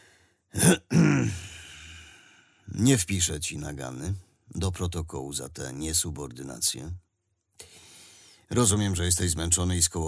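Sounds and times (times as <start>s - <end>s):
father clearing his throat: 0.6s - 1.6s
speech: 2.8s - 7.7s, 8.5s - 10.0s.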